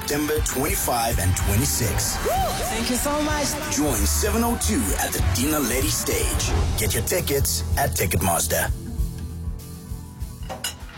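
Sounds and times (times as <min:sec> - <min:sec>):
speech: 0:00.1 - 0:08.8
bright clatter of dishes: 0:10.4 - 0:10.9
dishes and cutlery clinking during dishwashing: 0:10.4 - 0:10.9.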